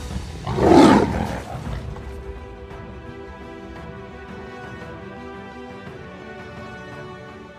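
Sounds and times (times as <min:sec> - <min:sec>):
lion roaring: 0:00.2 - 0:02.3.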